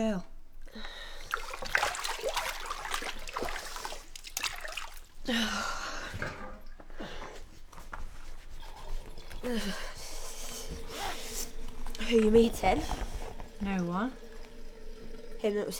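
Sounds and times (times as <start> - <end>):
speech: 0.0 - 0.3, 5.3 - 5.8, 12.3 - 14.2, 15.4 - 15.7
water trickling and dripping in a bathtub: 0.4 - 5.4, 8.3 - 15.7
bath water sloshing as someone climbs out of a bathtub: 0.4 - 15.7.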